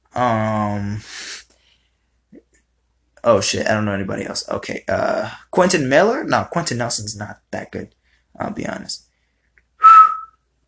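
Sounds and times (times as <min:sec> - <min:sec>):
speech: 0:03.2 - 0:09.1
person whistling: 0:09.8 - 0:10.4.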